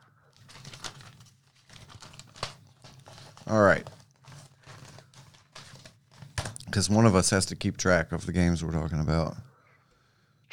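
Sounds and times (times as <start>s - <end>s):
paper rustling as it is handled and smoothed for writing: 0.3s - 7.6s
speech: 3.5s - 4.0s, 6.8s - 9.5s.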